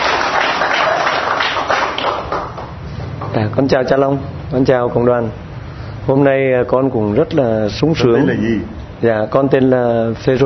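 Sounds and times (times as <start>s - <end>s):
crowd applauding: 0.0s - 2.8s
speech: 3.4s - 5.4s, 6.1s - 10.4s.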